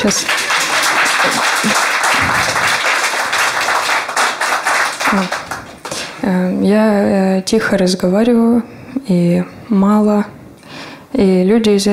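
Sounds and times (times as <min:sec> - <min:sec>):
speech: 0:00.0 - 0:00.5, 0:01.2 - 0:01.9, 0:05.1 - 0:05.4, 0:06.2 - 0:10.4, 0:11.2 - 0:11.9
crowd applauding: 0:00.0 - 0:06.2.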